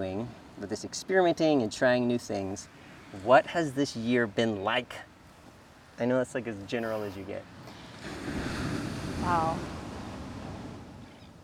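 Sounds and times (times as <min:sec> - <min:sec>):
speech: 0:00.0 - 0:05.1, 0:06.0 - 0:08.4, 0:09.2 - 0:09.8
ocean surf washing onto a beach: 0:00.0 - 0:11.4.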